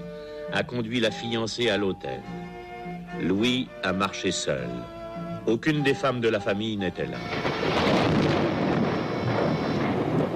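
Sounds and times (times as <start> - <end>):
speech: 0.5 - 2.4, 3.2 - 8.4
thunder rolling: 7.2 - 10.3.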